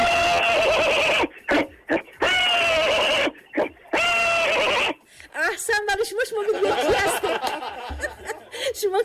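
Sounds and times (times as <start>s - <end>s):
caller's voice imitating a horse neighing: 0.0s - 5.0s
laughter: 6.4s - 8.9s.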